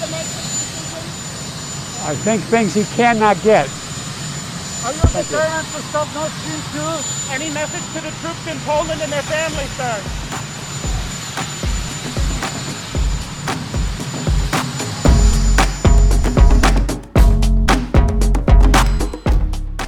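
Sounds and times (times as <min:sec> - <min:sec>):
continuous helicopter engine whine: 0:00.0 - 0:17.2
speech: 0:02.0 - 0:03.8, 0:04.8 - 0:10.3
helicopter rotor thumping: 0:02.4 - 0:05.7, 0:08.5 - 0:19.3.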